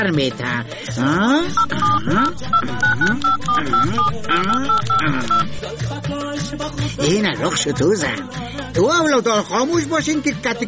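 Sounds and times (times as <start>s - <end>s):
speech: 0.0s - 10.6s
telephone keypad tones dialing a number: 1.5s - 5.5s.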